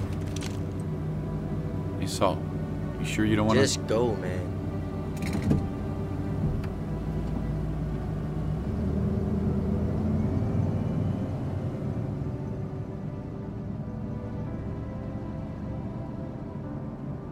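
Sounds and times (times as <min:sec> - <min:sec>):
car engine rumbling as the vehicle pulls away: 0:00.0 - 0:17.2
speech: 0:02.1 - 0:04.5
mechanical clunk and creak: 0:05.1 - 0:05.8.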